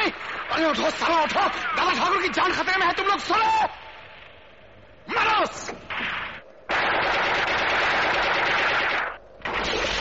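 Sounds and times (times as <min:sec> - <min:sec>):
speech: 0:00.2 - 0:03.8, 0:05.1 - 0:05.9
rapid automatic gunfire from many men shooting at one man: 0:06.7 - 0:09.9.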